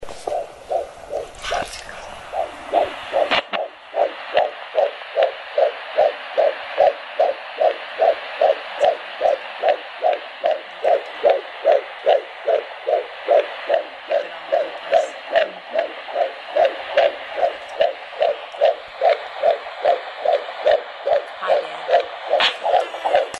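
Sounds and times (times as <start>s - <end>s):
fetal sounds: 0.0s - 23.3s.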